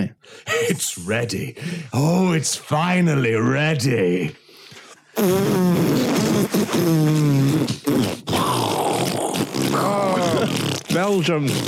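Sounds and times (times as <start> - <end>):
speech: 0.0 - 4.4, 5.2 - 8.1, 11.0 - 11.6
loud buzzy farts: 5.2 - 11.6.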